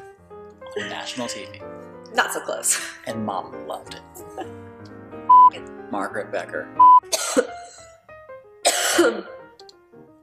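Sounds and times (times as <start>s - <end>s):
speech: 0.7s - 4.6s, 5.9s - 6.8s, 9.0s - 9.4s
harsh throaty coughs: 7.1s - 7.7s, 8.6s - 9.4s.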